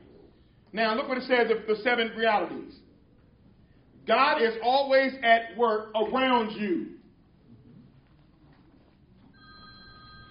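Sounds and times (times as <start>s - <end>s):
low rumbling room noise: 0.0s - 10.3s
speech: 0.7s - 2.8s, 4.0s - 7.0s
telephone ringing with an electronic tone: 9.3s - 10.3s.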